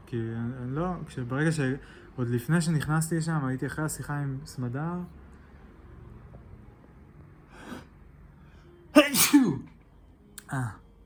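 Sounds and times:
speech: 0:00.1 - 0:05.2, 0:10.5 - 0:10.8
sharp intake of breath: 0:07.5 - 0:09.6
loud sneeze: 0:09.0 - 0:09.7.

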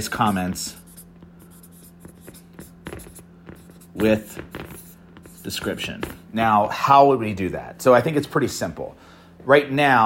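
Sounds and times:
speech: 0:00.0 - 0:00.8, 0:04.0 - 0:04.6, 0:05.4 - 0:10.0
scratchy writing strokes as something is jotted down by hand: 0:00.0 - 0:06.4.

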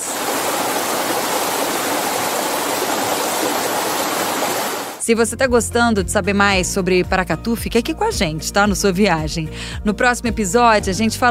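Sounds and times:
rushing water from a waterfall: 0:00.0 - 0:05.0
speech: 0:05.1 - 0:11.3.

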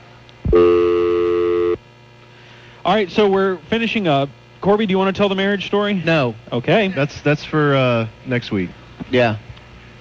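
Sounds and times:
telephone dial tone: 0:00.5 - 0:01.8
speech: 0:02.9 - 0:09.5.

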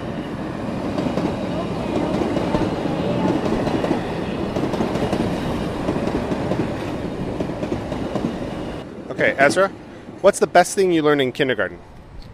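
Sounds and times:
train rumbling past: 0:00.0 - 0:12.3
speech: 0:09.2 - 0:11.9.

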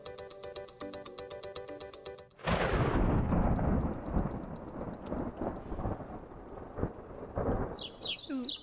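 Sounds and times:
loud rolling rumble of thunder: 0:02.4 - 0:08.2
bright bird chirps: 0:07.8 - 0:08.6.

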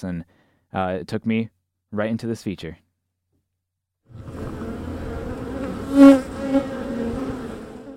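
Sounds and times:
speech: 0:00.0 - 0:02.8
louder bee zipping past: 0:04.1 - 0:07.9
many honeybees buzzing together: 0:04.1 - 0:07.9.

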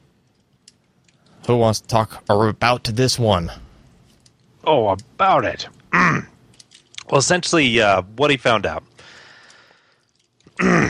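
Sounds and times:
speech: 0:01.5 - 0:03.6, 0:04.7 - 0:06.3, 0:07.1 - 0:08.9
throat clearing: 0:05.9 - 0:06.3, 0:10.6 - 0:10.8.

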